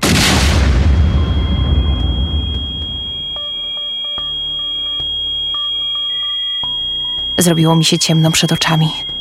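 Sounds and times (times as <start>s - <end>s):
loud explosion: 0.0s - 3.2s
faint high ringing tone: 0.9s - 9.2s
speech: 7.4s - 9.2s.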